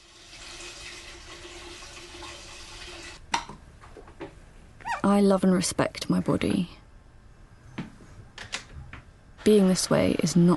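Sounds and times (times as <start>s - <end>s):
water running at a kitchen sink: 0.0s - 3.2s
speech: 5.0s - 6.8s, 9.5s - 10.5s.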